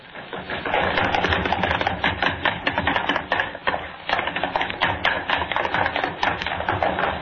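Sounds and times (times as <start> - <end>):
running footsteps of several people on a hard floor and wooden stairs: 0.0 - 7.1.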